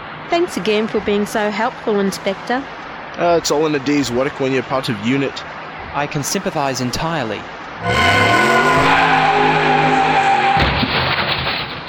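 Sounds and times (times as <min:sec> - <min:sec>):
speech: 0:00.3 - 0:08.8
car tires squealing in a hard skid: 0:07.8 - 0:11.0
rough noisy tire scraping: 0:07.8 - 0:11.7.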